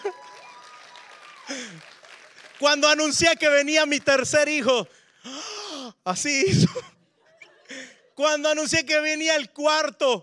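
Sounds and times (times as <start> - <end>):
laughter: 0.0 - 0.4, 6.4 - 8.2
church audience applauding: 0.0 - 4.8
speech: 1.5 - 1.9, 2.6 - 5.4, 6.1 - 7.0, 8.2 - 10.2.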